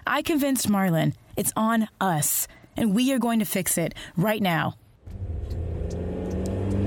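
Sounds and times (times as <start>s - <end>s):
speech: 0.1s - 4.8s
car engine revving with a steady low rumble: 5.0s - 6.8s.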